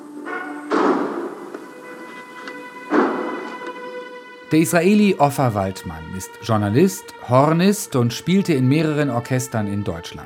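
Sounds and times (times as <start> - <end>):
steady tonal hum or faint music: 0.0 - 9.6
heavy door slamming shut: 0.3 - 4.0
speech: 4.5 - 10.2.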